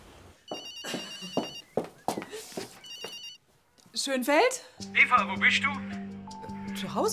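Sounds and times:
mobile phone ringing: 0.5 - 1.7, 2.8 - 3.4
speech: 4.0 - 6.0, 6.8 - 7.1.

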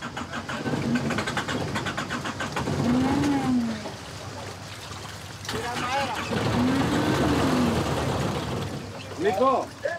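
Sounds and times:
boat engine cranking but failing to start: 0.0 - 3.4, 5.5 - 9.1.

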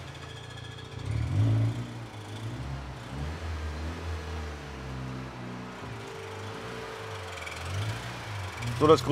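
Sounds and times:
repaired car engine running: 0.0 - 9.1.

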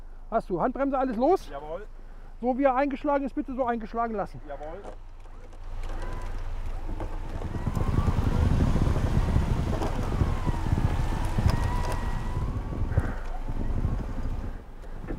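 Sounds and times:
speech: 0.3 - 5.1
wind buffeting outdoors: 5.6 - 15.1
car electric winch motor whining, operated by remote control: 5.8 - 15.0.

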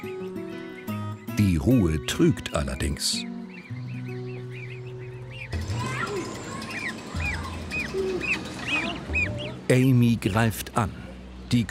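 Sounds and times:
goose chicks chattering with high thin peeping calls: 0.5 - 9.7
speech: 1.4 - 3.3, 9.7 - 11.7.

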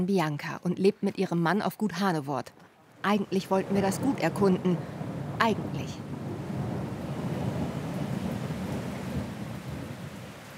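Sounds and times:
speech: 0.0 - 6.1
steady dense rain: 2.8 - 10.5
deep continuous rumbling thunder: 3.4 - 10.5.

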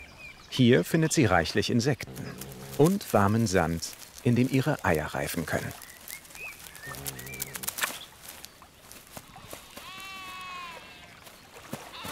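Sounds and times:
small birds chirping and twittering: 0.0 - 12.1
speech: 0.6 - 5.8
sheep bleating outdoors on old cultural land at Hirtenberg: 2.0 - 5.7, 6.8 - 7.9, 9.5 - 11.2, 11.9 - 12.1.

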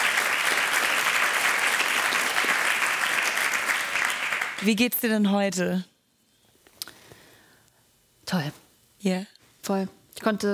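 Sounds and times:
applause from a group of people: 0.0 - 4.9
speech: 4.6 - 5.9, 8.3 - 10.5.

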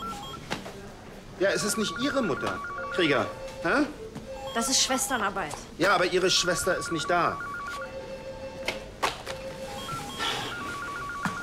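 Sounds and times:
telephone ringing with a steady electronic tone: 0.0 - 0.4, 1.4 - 3.7, 4.3 - 5.5, 6.2 - 8.6, 9.4 - 11.4
speech: 1.4 - 7.5.

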